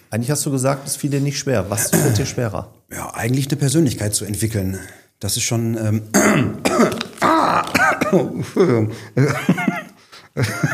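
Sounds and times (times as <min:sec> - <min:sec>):
speech: 0:00.1 - 0:09.8, 0:10.4 - 0:10.7
throat clearing and coughing: 0:01.8 - 0:02.4, 0:06.1 - 0:08.9
laughter: 0:08.2 - 0:10.7.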